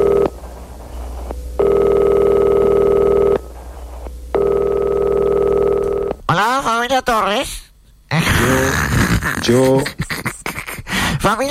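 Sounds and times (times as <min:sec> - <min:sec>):
old telephone ringing in long steady tonal bursts: 0:00.0 - 0:06.2
speech: 0:06.8 - 0:07.6, 0:08.5 - 0:10.0, 0:11.2 - 0:11.4.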